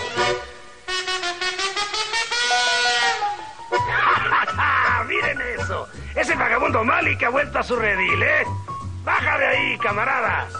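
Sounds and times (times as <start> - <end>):
trumpet blaring: 0.0 - 3.9
laughter: 3.8 - 5.5
speech: 6.8 - 10.5.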